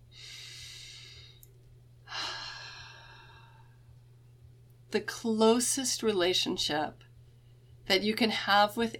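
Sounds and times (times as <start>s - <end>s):
faint low hum: 0.0s - 8.9s
deep breath in and out: 0.1s - 1.5s, 2.1s - 3.9s
speech: 4.9s - 7.1s, 7.9s - 8.9s.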